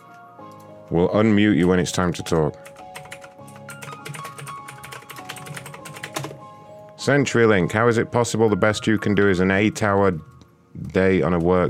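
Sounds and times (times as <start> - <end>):
speech: 0.9 - 2.8, 7.1 - 11.6
typing hard on a computer keyboard: 2.6 - 6.4.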